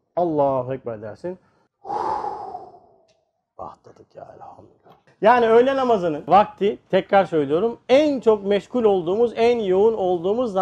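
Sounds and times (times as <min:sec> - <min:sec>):
speech: 0:00.2 - 0:02.0, 0:03.6 - 0:10.6
deep breath taken in and out: 0:01.4 - 0:03.1.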